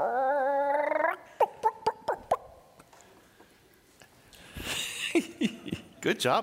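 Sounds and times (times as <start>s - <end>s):
person doing a chicken impression during a game of Simon Says: 0.0s - 2.6s
speech: 5.2s - 6.4s.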